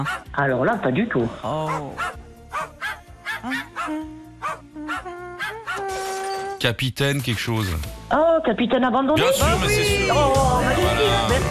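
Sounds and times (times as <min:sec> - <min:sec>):
dog barking with sharp gruff barks: 0:00.0 - 0:00.3, 0:01.6 - 0:05.9
speech: 0:00.0 - 0:02.2, 0:03.4 - 0:05.2, 0:06.6 - 0:11.4.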